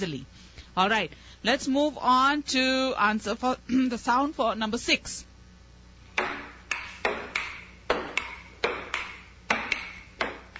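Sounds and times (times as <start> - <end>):
speech: 0.0 - 5.3
table tennis ball hitting paddle and table in a rally: 6.2 - 10.5.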